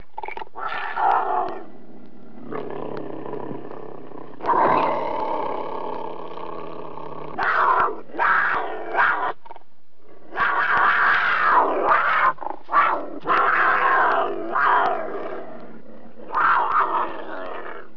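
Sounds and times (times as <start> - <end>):
cougar snarling and growling: 0.0 - 17.9.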